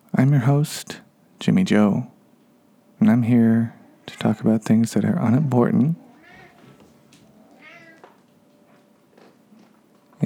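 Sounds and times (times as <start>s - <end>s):
speech: 0.2s - 2.1s, 3.0s - 6.1s
cat meowing softly: 6.0s - 8.2s.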